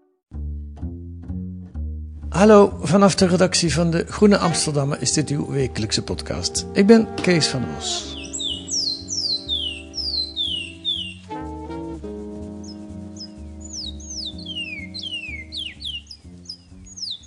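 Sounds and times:
low instrumental music: 0.0s - 17.2s
speech: 2.3s - 8.2s
Surinamese songbird singing whistled chirps: 4.0s - 17.2s.

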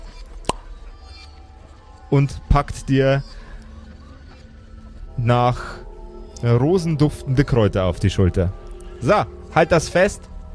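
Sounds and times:
round slightly moldy cork pulled from a glass jar: 0.4s - 0.7s
speech: 2.1s - 3.4s, 5.2s - 5.8s, 6.4s - 10.3s.

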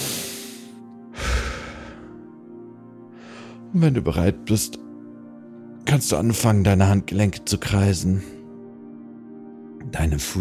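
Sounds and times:
deep breathing in through the nose and out through the mouth: 0.0s - 2.4s, 3.1s - 3.7s
speech: 3.7s - 4.8s, 6.0s - 8.4s, 10.0s - 10.3s.

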